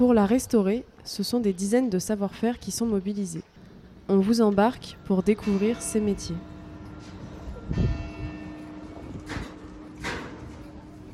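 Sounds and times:
speech: 0:00.0 - 0:03.5, 0:04.1 - 0:06.5
chapel bell at a royal château overlooking the Loire in France struck: 0:04.8 - 0:11.1.

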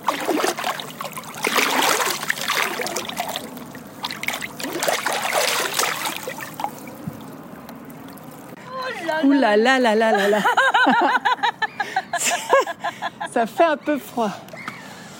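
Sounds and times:
water splashing and trickling in a cold lake: 0:00.0 - 0:08.6
speech: 0:09.4 - 0:11.3, 0:13.3 - 0:14.5
laughter: 0:09.9 - 0:13.5.

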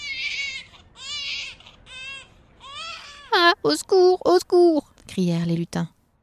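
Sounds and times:
newborn baby crying: 0:00.0 - 0:03.6
speech: 0:03.6 - 0:06.0.

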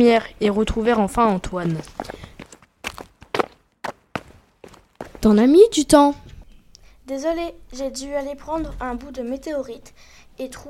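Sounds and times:
speech: 0:00.0 - 0:02.2, 0:05.2 - 0:06.2, 0:07.1 - 0:10.6
faint footsteps walking through corridors and stairs: 0:00.8 - 0:05.5.

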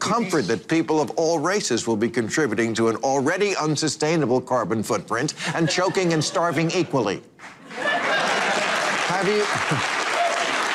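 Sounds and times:
speech: 0:00.1 - 0:08.1, 0:09.2 - 0:10.0
laughter: 0:05.4 - 0:10.2
audience applauding: 0:07.4 - 0:10.7.

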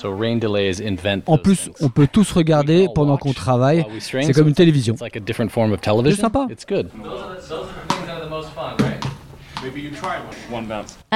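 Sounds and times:
speech: 0:00.0 - 0:08.9, 0:09.6 - 0:11.1
ball bouncing between two bins in a game of bin ball: 0:07.8 - 0:08.2, 0:08.8 - 0:10.2.

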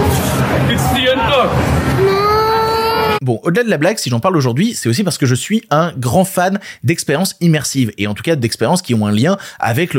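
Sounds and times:
busy noisy background: 0:00.0 - 0:03.2
frightened children wailing and sobbing: 0:01.9 - 0:03.2
speech: 0:03.2 - 0:09.9.

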